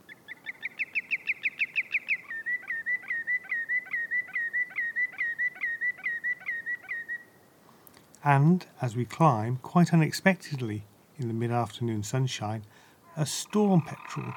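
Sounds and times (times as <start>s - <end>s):
greenshank calling from a rocky shore: 0.0s - 7.3s, 13.0s - 14.3s
speech: 8.2s - 14.3s.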